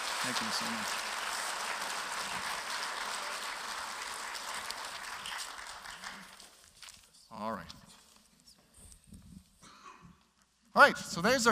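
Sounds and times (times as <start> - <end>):
church audience applauding: 0.0 - 6.6
speech: 0.2 - 1.1, 7.4 - 7.8, 10.8 - 11.5.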